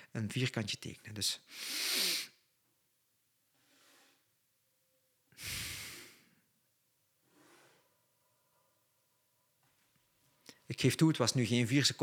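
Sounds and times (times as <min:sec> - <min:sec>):
speech: 0:00.1 - 0:02.2, 0:10.7 - 0:12.0
slow breathing during a box-breathing demonstration: 0:03.6 - 0:04.4, 0:05.4 - 0:06.5, 0:07.2 - 0:08.7.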